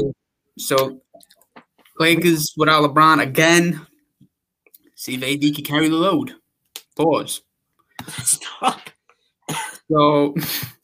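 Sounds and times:
speech: 0.0s - 1.0s, 2.0s - 3.9s, 5.0s - 6.4s, 7.0s - 8.9s, 9.5s - 10.8s
person clearing throat: 8.0s - 9.9s
person coughing: 8.0s - 9.9s.

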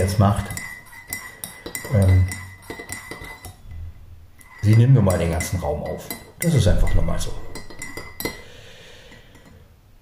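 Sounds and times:
speech: 0.0s - 0.6s, 1.9s - 2.4s, 4.6s - 7.4s
glasses clinking during a toast: 0.0s - 3.6s, 4.4s - 8.5s.

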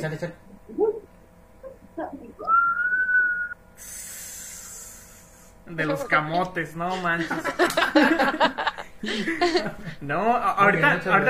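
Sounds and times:
speech: 0.0s - 0.9s, 5.7s - 11.2s
person whistling a short eerie tune: 2.4s - 3.6s
steady airy hiss: 3.7s - 10.7s
laughter: 6.8s - 10.0s.

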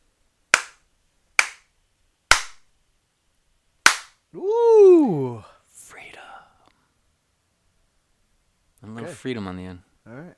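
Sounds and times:
sharp hand slaps: 0.5s - 1.7s, 2.3s - 2.7s, 3.8s - 4.2s
speech: 9.1s - 9.9s.

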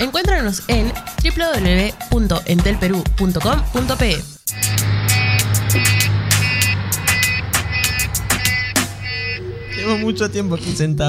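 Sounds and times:
speech: 0.0s - 4.4s, 5.7s - 6.0s, 9.8s - 11.0s
car engine idling in traffic: 4.5s - 10.6s
sharp repeated horn-like beeps and clicks: 4.5s - 10.8s.

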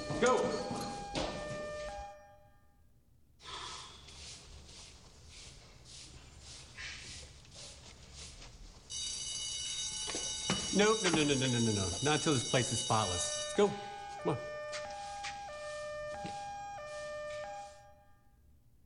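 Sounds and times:
fire alarm ringing: 0.0s - 2.8s, 8.7s - 18.5s
speech: 0.2s - 0.9s, 10.8s - 14.5s
rustling noise: 3.8s - 11.3s, 14.0s - 17.9s.

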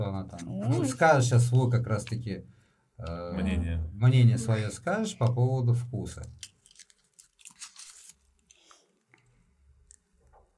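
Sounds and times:
speech: 0.3s - 6.5s
wet chewing of gum: 6.3s - 9.3s.

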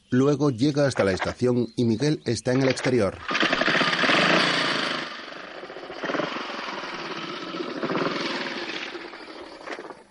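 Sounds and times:
speech: 0.1s - 3.6s
motorcycle engine being started in desperation and revved: 2.5s - 10.0s.

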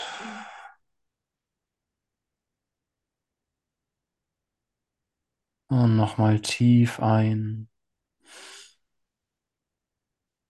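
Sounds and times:
deep breathy mouth exhale during a guided breathing exercise: 0.0s - 0.8s
speech: 5.7s - 7.7s.

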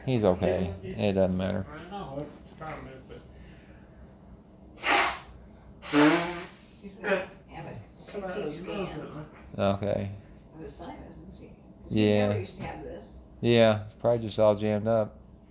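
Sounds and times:
speech: 0.0s - 3.3s, 6.8s - 15.2s
person blowing nose and snorting: 4.8s - 6.7s.

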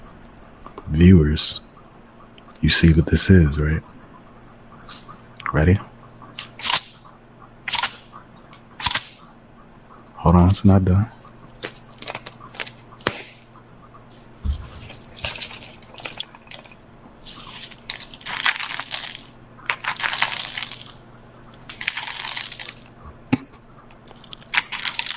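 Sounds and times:
low steady hum: 0.0s - 25.1s
speech: 0.9s - 1.7s, 2.6s - 3.9s, 4.9s - 5.9s, 10.2s - 11.2s
seasoned crackers being chewed: 6.4s - 7.1s, 8.8s - 9.3s, 11.5s - 13.5s, 14.1s - 23.2s, 23.8s - 25.1s.

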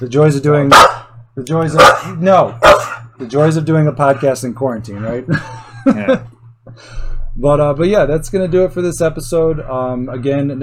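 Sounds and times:
speech: 0.0s - 10.6s
dog barking: 0.7s - 1.1s, 1.8s - 3.1s
dog whining yowl: 1.8s - 3.1s
laughter: 5.0s - 6.9s.

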